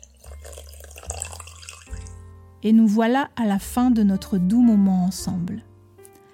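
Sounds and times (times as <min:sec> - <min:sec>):
tea dripping from a teapot spout into a cup: 0:00.0 - 0:02.2
speech: 0:02.6 - 0:05.7.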